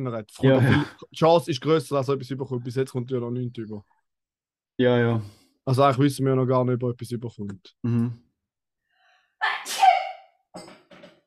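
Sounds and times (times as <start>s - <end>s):
speech: 0.0s - 4.0s, 4.8s - 8.2s
sneeze: 9.4s - 10.3s.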